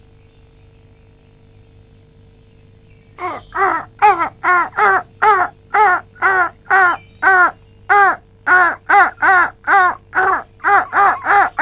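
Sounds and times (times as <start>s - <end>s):
crow cawing: 3.2s - 11.6s.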